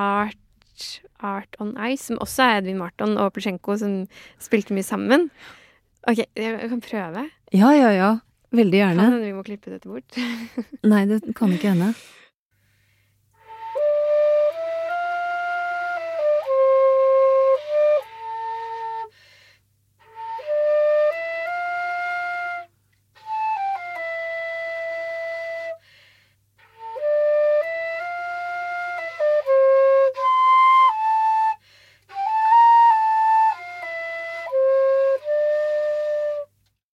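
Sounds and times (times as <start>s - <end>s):
speech: 0.0s - 12.2s
solo flute playing a slow melody: 13.4s - 19.2s, 20.0s - 25.8s, 26.6s - 36.8s.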